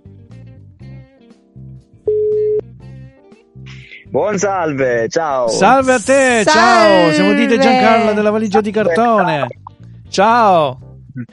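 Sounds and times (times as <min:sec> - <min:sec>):
short buzzy electronic telephone ringing beeps as a call is placed: 0:02.1 - 0:02.6
speech: 0:04.1 - 0:11.3
laughter: 0:05.5 - 0:09.5.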